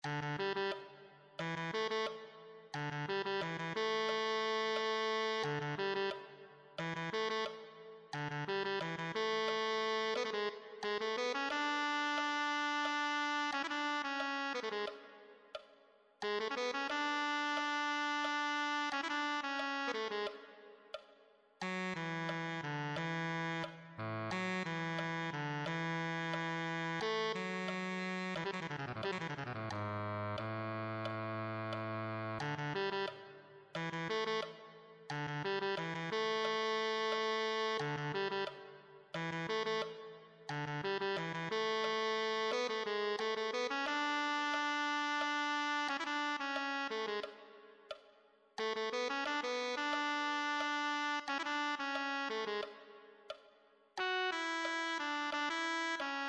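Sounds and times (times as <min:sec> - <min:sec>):
tenor saxophone: 0:00.0 - 0:53.4, 0:54.0 - 0:56.2.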